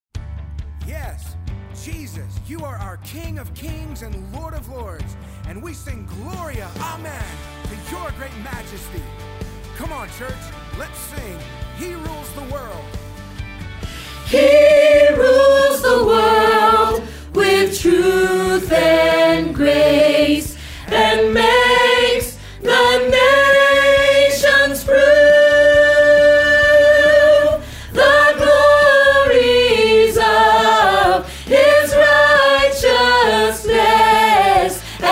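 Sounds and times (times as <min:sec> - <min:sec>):
soprano singing a choral rehearsal track: 0:14.2 - 0:35.1.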